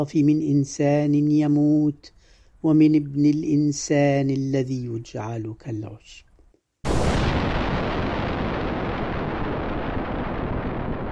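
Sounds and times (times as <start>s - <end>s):
speech: 0.0s - 6.2s
nearby bomb explosion sound effect: 6.8s - 11.1s.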